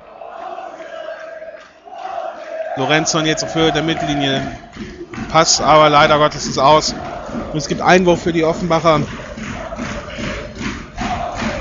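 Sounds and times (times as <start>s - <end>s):
large football stadium crowd chanting in unison during a match: 0.0s - 11.6s
speech: 2.8s - 7.0s, 7.6s - 9.2s.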